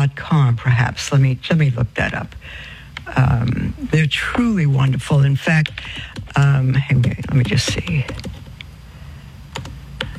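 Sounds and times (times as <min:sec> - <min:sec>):
speech: 0:00.0 - 0:08.3
low hum: 0:00.0 - 0:10.1
typing a website address on a computer keyboard: 0:05.6 - 0:06.4, 0:07.0 - 0:08.7, 0:09.5 - 0:10.1.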